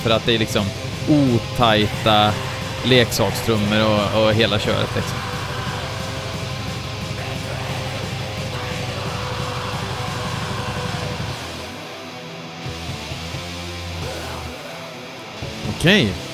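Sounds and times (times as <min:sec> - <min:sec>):
speech: 0:00.0 - 0:05.4, 0:15.8 - 0:16.3
fuzzy lo-fi black metal guitar riff: 0:00.0 - 0:16.3.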